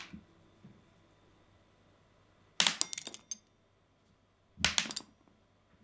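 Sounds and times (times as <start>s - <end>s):
die clattering and bouncing across a hard surface: 2.7s - 3.4s, 4.7s - 5.0s.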